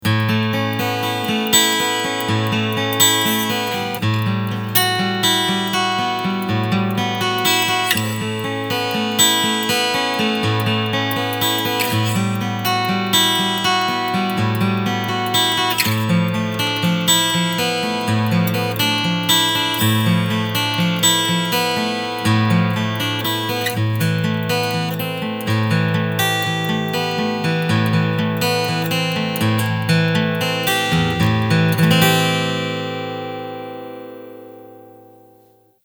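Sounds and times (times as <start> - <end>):
picking: 0.0 - 35.2.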